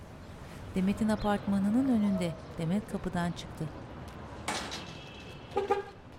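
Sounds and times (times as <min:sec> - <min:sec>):
quiet street background: 0:00.0 - 0:06.1
speech: 0:00.7 - 0:03.9, 0:05.5 - 0:05.8
car horn beeps outside an apartment building: 0:05.0 - 0:06.0.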